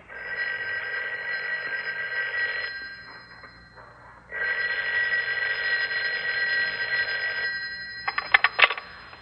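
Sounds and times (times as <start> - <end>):
telephone ringing with shrill electric bell tone: 0.1 - 9.1.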